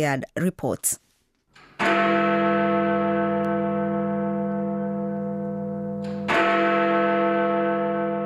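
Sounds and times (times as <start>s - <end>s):
speech: 0.0s - 1.1s
great clock tower bell chiming: 1.8s - 8.2s.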